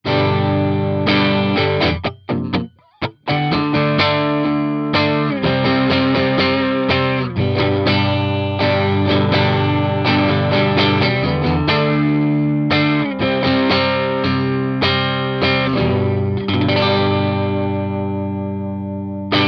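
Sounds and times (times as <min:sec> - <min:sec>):
distorted amplifier with middle setting: 0:00.0 - 0:19.4.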